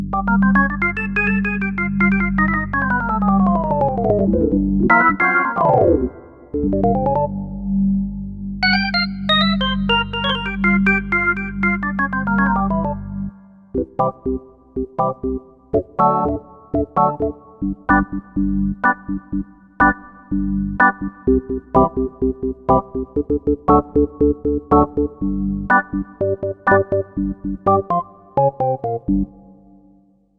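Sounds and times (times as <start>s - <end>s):
Korg MSC-9S organ with analog percussion: 0.1s - 7.5s, 8.6s - 13.2s, 13.7s - 29.5s.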